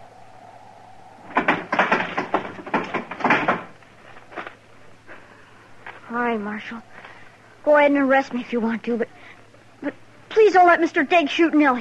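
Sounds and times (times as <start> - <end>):
heavy wooden barn door rattling and scraping open: 1.2 - 3.8
speech: 6.4 - 9.2, 9.8 - 11.8.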